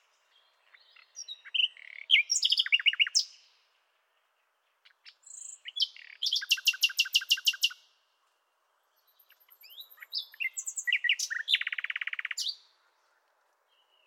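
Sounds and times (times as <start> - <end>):
common nightingale singing: 0.0 - 3.7, 4.8 - 7.9, 8.8 - 12.7.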